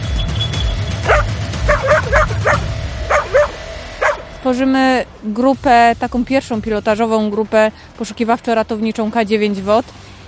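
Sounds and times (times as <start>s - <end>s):
low rumbling background: 0.0s - 10.2s
dog barking: 1.0s - 4.3s
speech: 4.4s - 10.1s.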